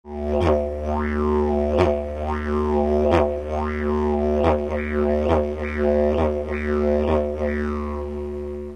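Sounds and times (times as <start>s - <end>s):
didgeridoo imitating a kangaroo: 0.0s - 8.7s.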